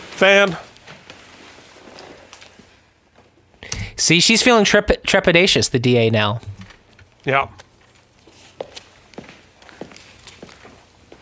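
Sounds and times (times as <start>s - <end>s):
speech: 0.2s - 0.7s, 4.0s - 6.5s, 7.2s - 7.6s
slow footsteps walking on a hard surface: 8.3s - 11.2s.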